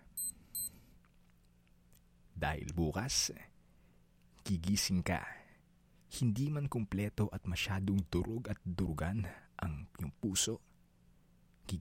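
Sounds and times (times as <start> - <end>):
short electronic alarm clock beeps: 0.2 - 0.7
speech: 2.4 - 3.5, 4.5 - 5.4, 6.1 - 10.7.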